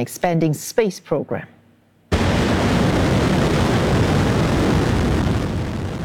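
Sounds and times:
speech: 0:00.0 - 0:01.6
200-ton rocket lifting off at a space center: 0:02.1 - 0:06.0.

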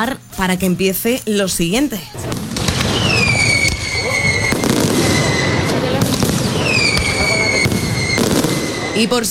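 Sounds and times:
speech: 0:00.0 - 0:02.5, 0:09.0 - 0:09.2
fireworks display booms at a fairground: 0:02.2 - 0:09.2
rising whistles of fireworks rockets gliding down in pitch: 0:02.2 - 0:09.2.

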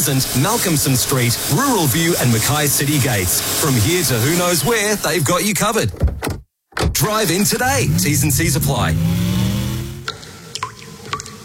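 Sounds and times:
speech: 0:00.0 - 0:06.0, 0:07.0 - 0:09.4
water dripping from a bathroom leak: 0:10.0 - 0:11.4.

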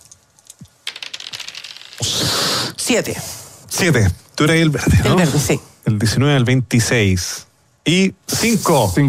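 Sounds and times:
dice rattling and clattering across a surface: 0:00.0 - 0:02.2
speech: 0:02.9 - 0:09.0.

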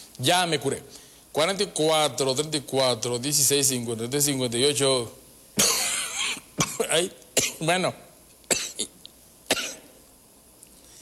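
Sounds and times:
speech: 0:00.2 - 0:05.7, 0:07.0 - 0:08.1
dry coughs: 0:05.6 - 0:07.6, 0:08.5 - 0:10.0.

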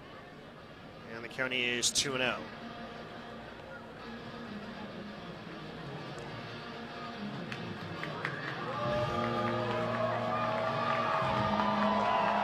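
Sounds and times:
speech: 0:01.3 - 0:02.8
large baseball stadium crowd roaring and cheering: 0:07.8 - 0:12.4.

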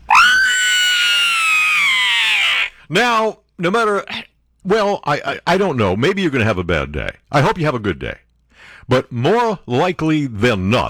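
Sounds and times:
sustained high-pitched scream sound effect: 0:00.0 - 0:02.8
speech: 0:02.9 - 0:10.8.

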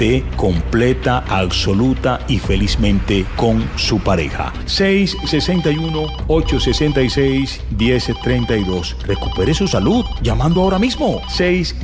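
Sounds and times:
speech: 0:00.0 - 0:11.8
telephone ringing with a loud melodic ringtone for an incoming call: 0:05.1 - 0:07.2, 0:07.9 - 0:11.6.

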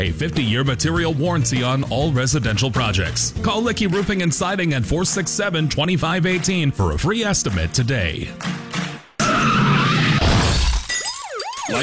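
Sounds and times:
speech: 0:00.0 - 0:08.6
car skidding: 0:09.2 - 0:10.5
car crash of smashing metal and shattering glass: 0:09.9 - 0:11.8.

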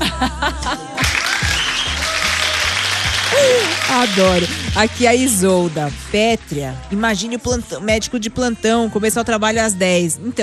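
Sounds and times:
laughter: 0:00.0 - 0:04.2
speech: 0:00.2 - 0:00.6, 0:04.0 - 0:10.4
dense round of applause: 0:01.0 - 0:07.0.

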